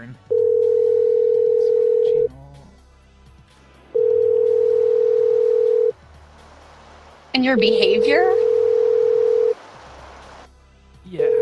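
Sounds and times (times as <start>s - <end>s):
speech: 0.0s - 0.3s, 7.4s - 8.5s
telephone dial tone: 0.3s - 2.2s, 4.0s - 5.9s, 8.4s - 9.6s.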